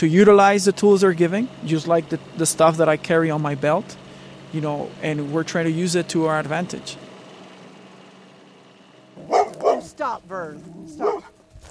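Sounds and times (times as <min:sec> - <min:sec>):
speech: 0:00.0 - 0:07.1, 0:10.0 - 0:11.2
dog with drawn-out whining howl: 0:09.2 - 0:09.9, 0:10.5 - 0:11.4
dogs barking and yipping on a dirt road on the outskirts of Douglas Arizona: 0:09.2 - 0:10.0, 0:10.6 - 0:11.4
woman calling her dogs into the house: 0:09.3 - 0:11.3.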